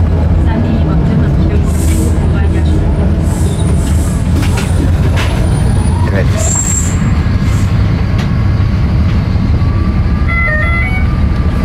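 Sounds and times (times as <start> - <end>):
engine rumble inside a moving city bus: 0.0 - 11.6
rattles and clunks inside a city bus: 3.8 - 5.6.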